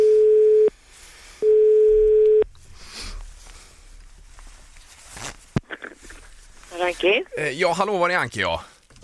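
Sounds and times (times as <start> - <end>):
telephone ringing tone while placing a phone call: 0.0 - 0.7, 1.4 - 2.4
rustling and handling noise: 2.5 - 9.0
speech: 7.0 - 9.0.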